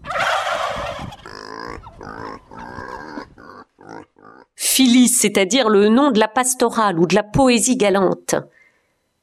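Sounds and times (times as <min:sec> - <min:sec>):
turkeys gobbling: 0:00.0 - 0:04.3
pigs grunting: 0:01.1 - 0:04.6
speech: 0:04.8 - 0:08.6.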